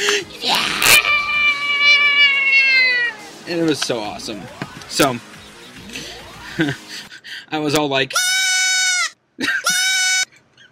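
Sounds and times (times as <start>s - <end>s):
baby goat screaming: 0.4s - 3.5s, 8.1s - 10.3s
speech: 3.5s - 5.3s, 6.6s - 6.8s, 7.5s - 8.3s, 9.4s - 9.6s.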